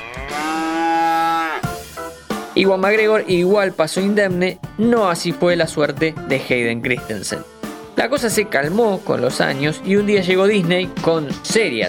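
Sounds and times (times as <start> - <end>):
cow mooing: 0.0 - 1.7
speech: 2.6 - 11.8.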